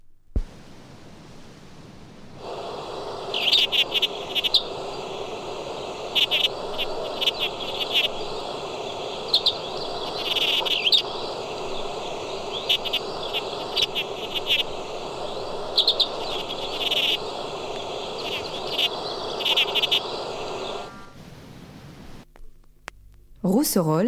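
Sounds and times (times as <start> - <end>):
outdoor hiss: 0.0 - 24.0
lesser whitethroat singing: 2.9 - 21.2
speech: 23.7 - 24.0.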